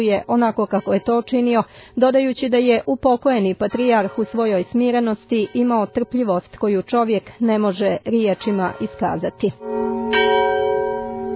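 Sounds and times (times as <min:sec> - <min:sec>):
monastery church bell at Gračanica in Kosovo tolling for the death of a patriarch: 0:00.0 - 0:01.6, 0:03.7 - 0:06.2, 0:08.3 - 0:11.3
speech: 0:00.0 - 0:10.6.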